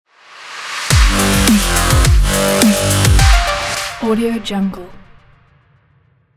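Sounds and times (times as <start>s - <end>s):
corporate dubstep logo jingle: 0.9s - 4.1s.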